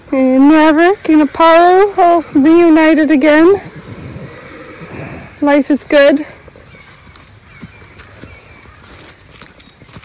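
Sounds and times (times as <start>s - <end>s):
horse hooves clopping outdoors: 0.0s - 10.0s
speech: 0.1s - 3.7s, 5.4s - 6.4s.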